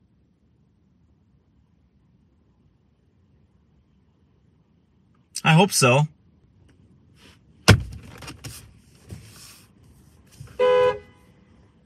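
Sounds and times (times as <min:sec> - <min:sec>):
speech: 0:05.5 - 0:06.2
quiet rustling and movement: 0:07.1 - 0:10.6
car door shutting thump: 0:07.6 - 0:09.2
car horn honk: 0:10.5 - 0:11.5.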